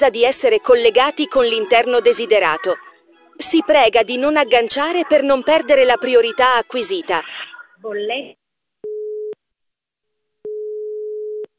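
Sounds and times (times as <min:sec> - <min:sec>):
speech: 0:00.0 - 0:08.4
voice fragment: 0:00.0 - 0:08.4
telephone busy tone after call hung up: 0:10.5 - 0:11.5.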